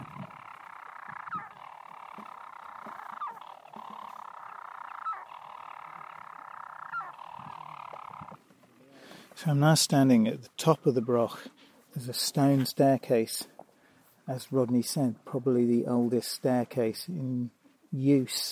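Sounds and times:
European storm petrel singing from the walls of a broch on Mousa, Shetland: 0:00.0 - 0:09.0
speech: 0:09.4 - 0:13.5, 0:14.3 - 0:18.5.

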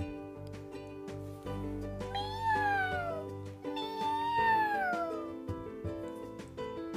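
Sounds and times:
steady musical background: 0:00.0 - 0:06.9
kitten clinging to a toy boat in water meowing in distress: 0:02.1 - 0:05.3.

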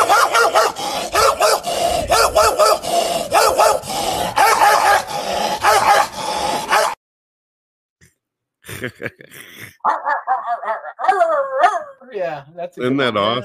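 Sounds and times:
dog barking: 0:00.0 - 0:07.0, 0:09.8 - 0:12.0
laughter: 0:08.6 - 0:09.9
speech: 0:10.4 - 0:13.4.

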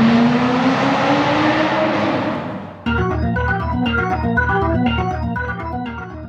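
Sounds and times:
car engine roaring and revving as it accelerates: 0:00.0 - 0:02.9
steady rhythmic mechanical drone: 0:02.9 - 0:06.2.

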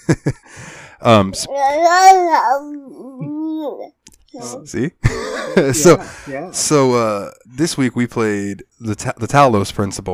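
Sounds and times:
speech: 0:00.1 - 0:00.4, 0:01.0 - 0:03.0, 0:03.6 - 0:10.1
baby babbling: 0:01.4 - 0:04.7, 0:05.7 - 0:06.6
laughter: 0:05.0 - 0:06.3.

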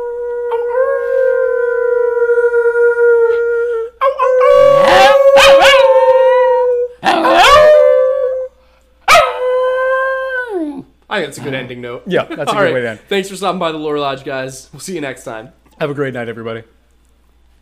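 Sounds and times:
dog howling: 0:00.0 - 0:08.5, 0:09.1 - 0:10.8
speech: 0:11.2 - 0:16.8.

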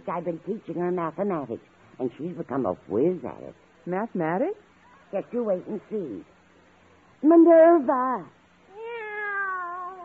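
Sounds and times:
speech: 0:00.1 - 0:06.4, 0:07.2 - 0:08.4
cat meowing: 0:08.7 - 0:10.0.

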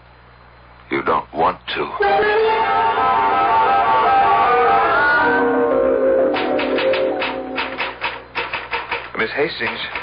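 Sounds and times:
speech: 0:01.0 - 0:03.1, 0:09.2 - 0:10.0
sustained humming musical tone: 0:02.0 - 0:08.3
typewriter keystrokes typing a letter: 0:06.4 - 0:10.0.

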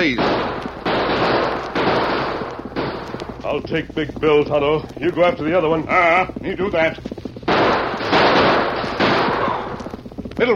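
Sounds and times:
speech: 0:00.0 - 0:00.3, 0:03.5 - 0:07.2
gunfire in a western shootout on a trail: 0:00.0 - 0:10.5.

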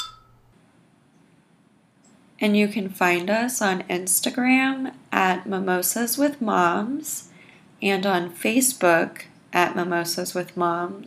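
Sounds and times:
glasses clinking in a toast: 0:00.0 - 0:00.5
faint steady hiss: 0:00.2 - 0:11.0
speech: 0:02.4 - 0:11.0.

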